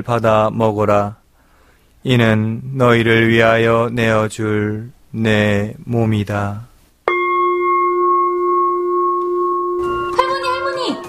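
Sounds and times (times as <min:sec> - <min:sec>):
speech: 0:00.0 - 0:01.2, 0:02.0 - 0:06.7
church bell ringing during Mass: 0:07.1 - 0:11.0.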